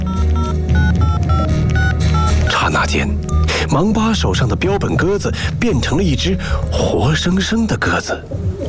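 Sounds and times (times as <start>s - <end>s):
mobile phone keypad dialing tones: 0.0s - 2.4s, 3.3s - 3.5s
speech: 2.9s - 8.5s.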